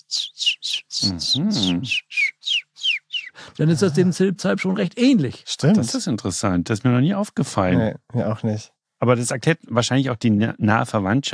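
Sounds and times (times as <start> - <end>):
whistled imitation of willow warbler song: 0.0 - 3.4
speech: 1.0 - 2.1, 3.6 - 11.3.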